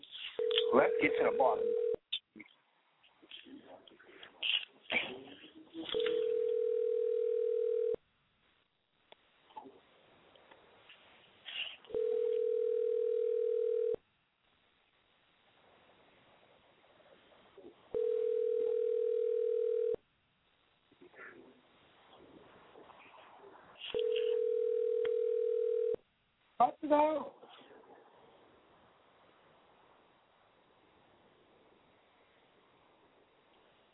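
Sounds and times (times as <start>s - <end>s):
faint hiss: 0.0s - 33.9s
telephone line tone beeps while placing a call: 0.4s - 2.0s, 5.9s - 8.0s, 11.9s - 14.0s, 18.0s - 20.0s, 24.0s - 26.0s
speech: 0.7s - 1.8s.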